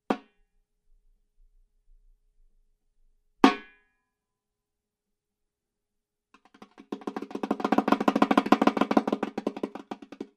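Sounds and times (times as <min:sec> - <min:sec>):
dry drum: 0:06.4 - 0:10.3.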